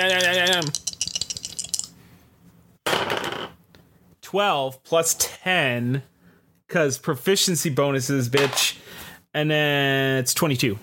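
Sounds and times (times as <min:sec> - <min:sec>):
dice rattling in a dice bag: 0:00.0 - 0:02.0
speech: 0:04.3 - 0:06.1, 0:06.7 - 0:10.8.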